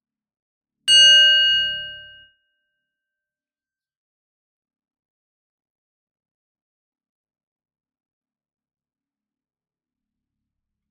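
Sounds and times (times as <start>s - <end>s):
single bell struck and ringing: 0.9s - 2.2s.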